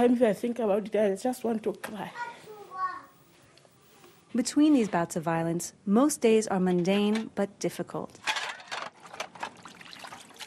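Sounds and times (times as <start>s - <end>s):
speech: 0.0s - 2.4s, 4.3s - 8.3s
water trickling and splashing as dishes are washed: 9.0s - 10.4s.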